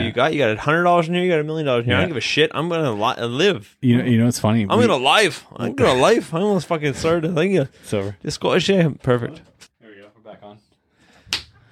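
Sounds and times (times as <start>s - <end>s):
speech: 0.1s - 9.6s
hand slapping a piece of equipment to get it working: 11.3s - 11.6s.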